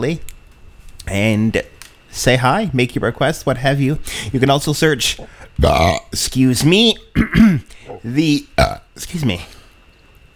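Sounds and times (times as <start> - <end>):
speech: 0.0 - 0.3, 1.0 - 9.6
person belching after drinking Pepsi: 5.2 - 6.2, 7.2 - 8.9.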